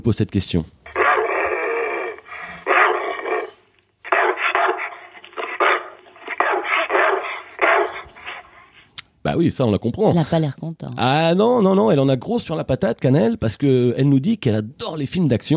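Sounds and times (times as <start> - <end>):
speech: 0.0 - 0.8, 9.3 - 15.5
beauceron dog barking and grumbling: 0.9 - 8.8.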